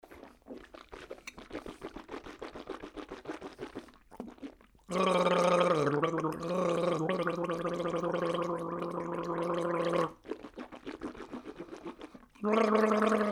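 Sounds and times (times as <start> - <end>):
person spitting: 0.0 - 13.2
person gargling: 4.9 - 10.2, 12.4 - 13.2.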